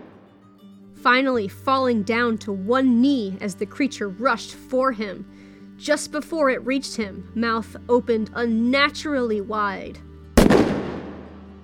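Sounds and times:
speech: 1.0s - 10.1s
gunshot with rumbling echo: 10.4s - 11.4s.

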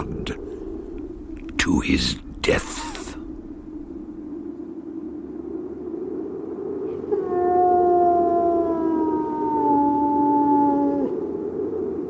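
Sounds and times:
low rumble: 0.0s - 12.0s
speech: 1.7s - 2.9s
hound howling: 7.0s - 11.3s.

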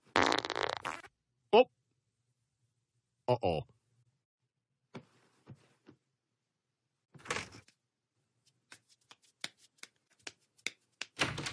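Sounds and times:
loud drawn-out raspy fart: 0.1s - 1.1s
speech: 1.5s - 1.8s, 3.3s - 3.7s.

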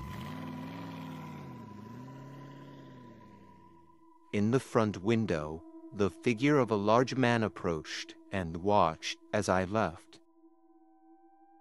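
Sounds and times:
car engine humming as the vehicle pulls away from a house: 0.0s - 4.2s
speech: 4.3s - 10.2s.

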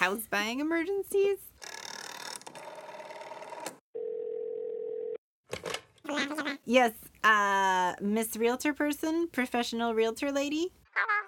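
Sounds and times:
speech: 0.1s - 1.5s, 6.2s - 11.2s
telephone dial tone: 1.7s - 5.2s.

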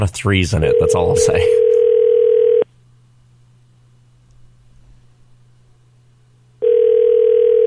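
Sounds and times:
speech: 0.0s - 1.8s
telephone ringback tone through the phone line on a call to Alberta: 0.7s - 2.6s, 6.6s - 7.6s.

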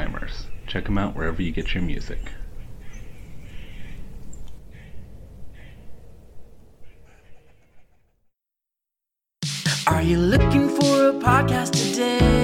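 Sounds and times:
dawn chorus of birds singing outdoors: 0.0s - 8.2s
speech: 0.7s - 2.4s, 10.0s - 12.3s.

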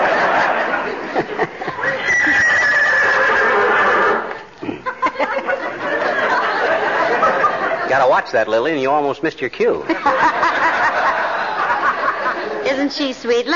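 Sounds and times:
laughter: 0.0s - 8.3s, 9.8s - 12.6s
horse neighing: 1.8s - 4.3s
speech: 8.2s - 10.4s, 12.8s - 13.5s.

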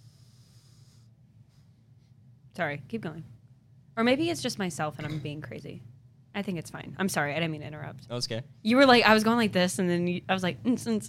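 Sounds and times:
breathing into a microphone: 0.0s - 2.2s
speech: 2.6s - 3.4s, 4.0s - 11.0s.

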